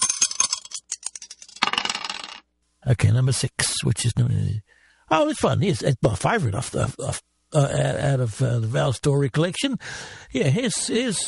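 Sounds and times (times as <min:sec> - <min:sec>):
dice tossed, rattling and clattering: 0:00.0 - 0:02.4
speech: 0:02.9 - 0:11.2.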